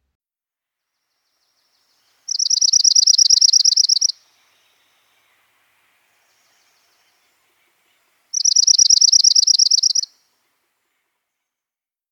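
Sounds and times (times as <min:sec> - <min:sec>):
high-pitched trilling bird song: 0:02.3 - 0:05.0, 0:08.3 - 0:10.2.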